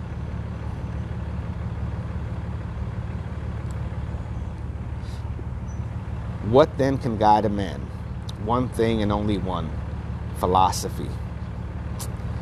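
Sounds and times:
big old truck engine running: 0:00.0 - 0:12.4
speech: 0:06.5 - 0:09.8, 0:10.4 - 0:11.2.

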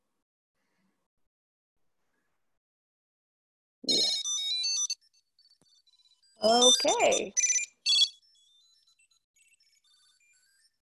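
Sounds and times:
speech: 0:06.4 - 0:07.5
Tile tracker ringing with an electronic chime, rung through Siri: 0:06.4 - 0:08.2.

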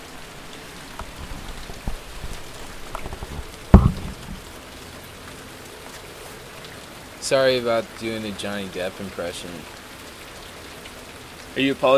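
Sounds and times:
steady rain pattering: 0:00.0 - 0:11.9
sharp splash or knock: 0:03.0 - 0:04.4
speech: 0:07.3 - 0:09.8, 0:11.6 - 0:11.9.

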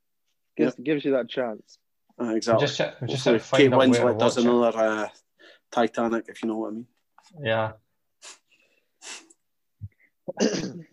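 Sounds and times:
speech: 0:00.6 - 0:08.4, 0:10.3 - 0:10.9
person coughing: 0:10.3 - 0:10.9.

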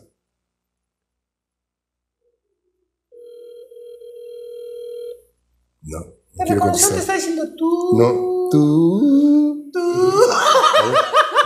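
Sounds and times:
buzzing phone ringback tone on speakerphone: 0:03.1 - 0:05.3
speech: 0:05.8 - 0:09.3
laughter: 0:10.0 - 0:11.4.

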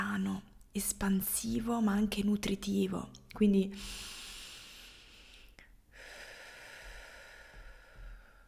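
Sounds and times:
speech: 0:00.2 - 0:04.2
slow deep breath in and long airy exhale: 0:03.8 - 0:08.4.

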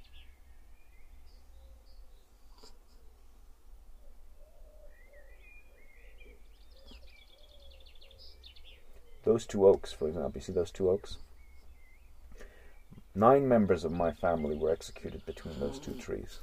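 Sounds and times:
birds calling and chirping outdoors with trilling notes: 0:00.0 - 0:03.2, 0:03.9 - 0:16.4
speech: 0:09.3 - 0:11.3, 0:13.2 - 0:16.4
soft cooing: 0:15.3 - 0:16.4.

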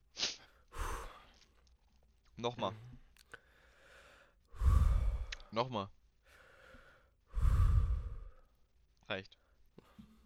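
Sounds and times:
deep deliberate breathing: 0:00.5 - 0:01.6, 0:02.8 - 0:05.5, 0:06.2 - 0:08.7
speech: 0:02.4 - 0:03.0, 0:05.5 - 0:06.0, 0:09.1 - 0:09.4.

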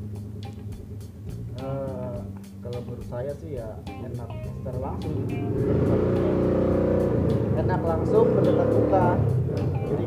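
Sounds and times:
speech: 0:02.8 - 0:06.5, 0:07.6 - 0:10.0
motorcycle engine revving outside: 0:04.7 - 0:10.0.

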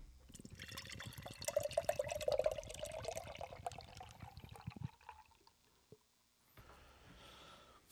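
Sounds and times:
beer of 11.7% ABV pouring into a glass: 0:00.3 - 0:05.8.

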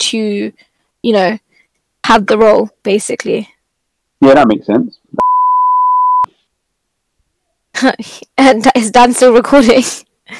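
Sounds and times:
speech: 0:00.1 - 0:01.4, 0:02.1 - 0:03.5, 0:04.2 - 0:05.3, 0:07.8 - 0:10.3
high-pitched censor bleep covering a spoken name: 0:05.2 - 0:06.3.

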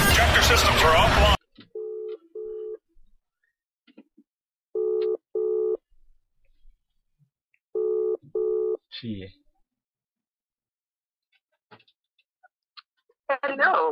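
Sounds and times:
speech: 0:00.5 - 0:01.4, 0:09.0 - 0:09.4, 0:13.3 - 0:13.9
telephone ringback tone: 0:01.8 - 0:02.8, 0:04.8 - 0:05.8, 0:07.8 - 0:08.8.

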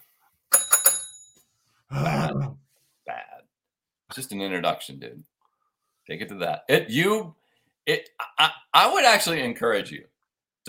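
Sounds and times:
judgment bell sound effect: 0:00.5 - 0:01.4
speech: 0:04.2 - 0:05.3, 0:06.1 - 0:10.6.

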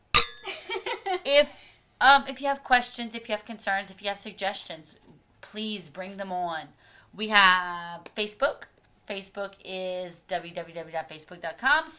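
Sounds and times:
glasses clinking in a toast: 0:00.2 - 0:00.5
speech: 0:01.3 - 0:11.9.

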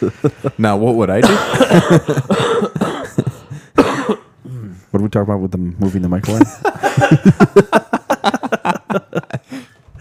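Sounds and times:
speech: 0:00.0 - 0:02.6, 0:05.1 - 0:07.8
person coughing harshly: 0:01.2 - 0:04.4
laughter: 0:06.3 - 0:09.8.

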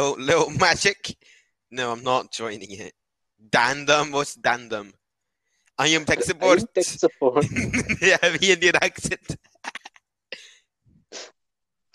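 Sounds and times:
speech: 0:00.0 - 0:05.0, 0:05.8 - 0:09.8
laughter: 0:05.8 - 0:09.8
person coughing: 0:06.2 - 0:06.7.

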